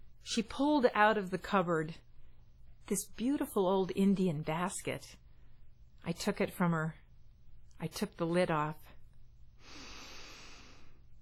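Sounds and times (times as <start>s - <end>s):
speech: 0.3s - 2.1s, 2.9s - 5.2s, 6.0s - 7.0s, 7.8s - 8.9s
long airy sniff through the nose at an old basket: 9.6s - 11.0s.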